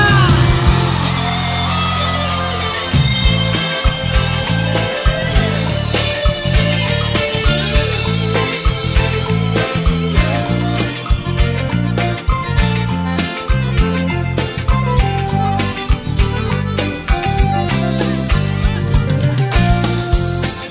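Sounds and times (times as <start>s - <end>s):
crowd shouting: 0.0s - 11.2s
pounding bass-heavy live music: 0.0s - 20.6s.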